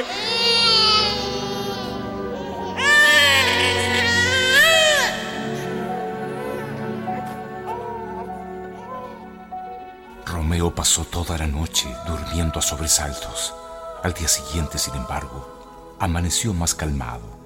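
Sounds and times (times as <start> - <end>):
baby wailing: 0.0 - 10.3
speech: 10.8 - 17.4.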